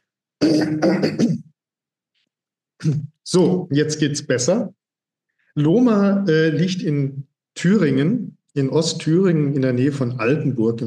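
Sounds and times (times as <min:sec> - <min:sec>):
person clearing throat: 0:00.4 - 0:01.6, 0:02.8 - 0:03.2
speech: 0:00.5 - 0:01.4, 0:02.8 - 0:04.8, 0:05.6 - 0:10.8.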